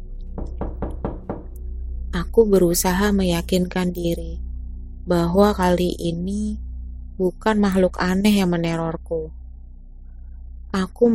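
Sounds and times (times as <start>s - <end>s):
low hum: 0.0s - 11.1s
knocking on a door: 0.4s - 1.6s
speech: 2.2s - 4.4s, 5.0s - 6.6s, 7.2s - 9.4s, 10.7s - 11.1s.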